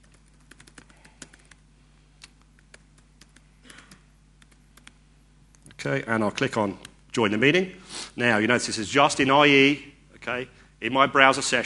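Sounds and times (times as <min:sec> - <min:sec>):
login credentials typed on a computer keyboard: 0:00.0 - 0:01.6, 0:02.2 - 0:05.0
speech: 0:05.8 - 0:11.6.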